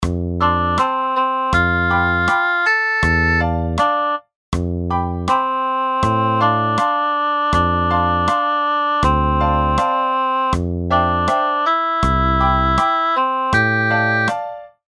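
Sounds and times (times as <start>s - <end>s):
music: 0.0s - 14.9s.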